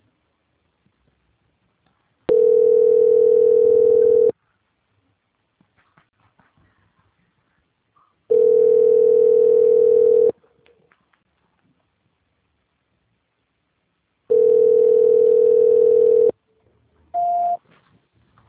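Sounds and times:
telephone line tone while a call is being transferred: 0:02.3 - 0:04.3, 0:08.3 - 0:10.3, 0:14.3 - 0:16.4, 0:17.2 - 0:17.6.

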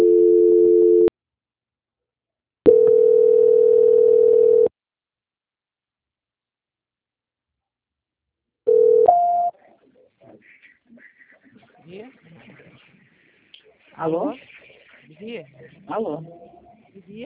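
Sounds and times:
telephone line tones during a call transfer: 0:00.0 - 0:01.1, 0:02.7 - 0:04.7, 0:08.7 - 0:09.5
speech: 0:14.0 - 0:14.4, 0:15.3 - 0:17.2.

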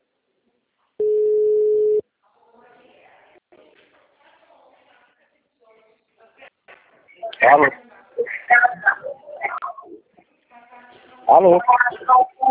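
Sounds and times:
telephone ringback tone on an unanswered call: 0:01.0 - 0:02.0
speech: 0:07.5 - 0:07.8, 0:11.4 - 0:12.3.

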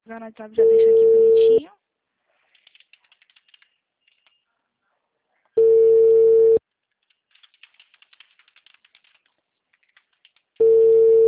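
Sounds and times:
speech: 0:00.1 - 0:01.8
ringback tone of an outgoing telephone call: 0:00.6 - 0:01.6, 0:05.6 - 0:06.6, 0:10.6 - 0:11.2
soft keyboard typing clicks: 0:02.6 - 0:04.4, 0:07.0 - 0:10.7.

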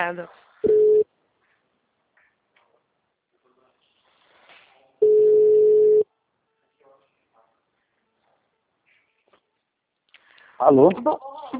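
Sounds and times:
speech: 0:00.0 - 0:00.8, 0:10.6 - 0:11.5
telephone ringback tone on an outgoing sales call: 0:00.7 - 0:01.0, 0:05.0 - 0:06.0.

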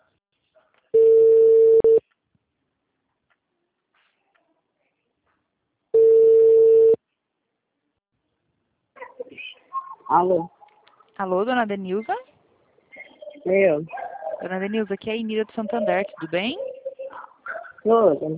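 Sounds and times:
ringback tone of an outgoing telephone call: 0:01.0 - 0:02.0, 0:06.0 - 0:07.0
speech: 0:10.1 - 0:10.6, 0:11.2 - 0:12.2, 0:13.5 - 0:16.7, 0:17.8 - 0:18.3.

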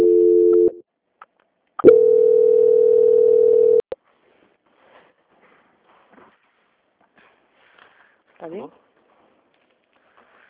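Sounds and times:
telephone line tone during a call transfer: 0:00.0 - 0:00.8, 0:01.8 - 0:03.8.

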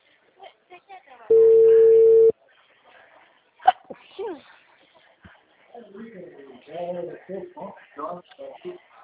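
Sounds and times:
telephone ringback tone while a call is placed: 0:01.3 - 0:02.3.

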